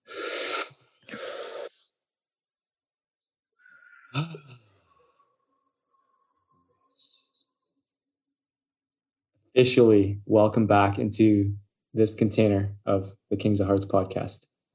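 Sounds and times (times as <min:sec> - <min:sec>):
several people taking a deep breath together: 0:00.0 - 0:01.8, 0:03.5 - 0:04.2
speech: 0:09.6 - 0:14.5.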